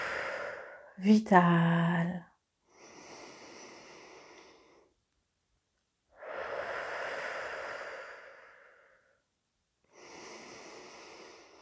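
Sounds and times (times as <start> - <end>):
slow deep breathing during a guided breathing exercise: 0.0 - 1.0, 2.7 - 4.9, 6.2 - 9.2, 9.9 - 11.6
speech: 1.0 - 2.3.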